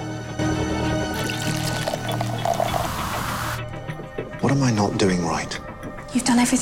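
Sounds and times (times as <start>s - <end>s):
lemonade pouring into a glass in a pub: 1.1s - 3.6s
speech: 4.5s - 6.6s.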